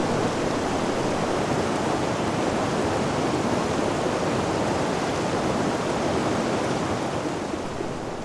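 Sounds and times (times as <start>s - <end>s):
fast-flowing river rushing over rocks in a gorge: 0.0s - 8.2s.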